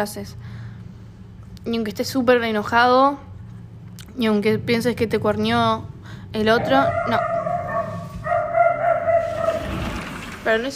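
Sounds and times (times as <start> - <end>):
speech: 0.0 - 0.6, 1.6 - 3.3, 4.2 - 7.4, 10.4 - 10.7
low rumble of noise: 0.0 - 10.7
dog barking in drawn-out tonal calls: 6.5 - 10.0.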